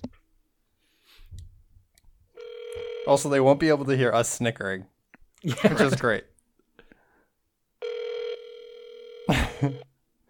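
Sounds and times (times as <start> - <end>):
ringback tone on an outgoing telephone call: 2.4 - 3.3, 7.8 - 9.8
speech: 3.1 - 6.3, 9.6 - 9.9.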